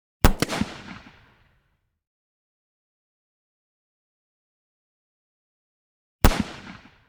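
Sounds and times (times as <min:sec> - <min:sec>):
.357 Magnum pistol blasts at medium range: 0:00.2 - 0:01.3, 0:06.2 - 0:07.0.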